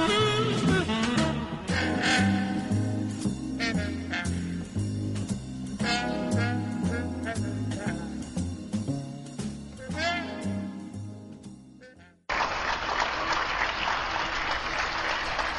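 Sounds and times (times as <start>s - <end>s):
music: 0.0s - 12.3s
neighbours applauding from their homes: 12.3s - 15.5s.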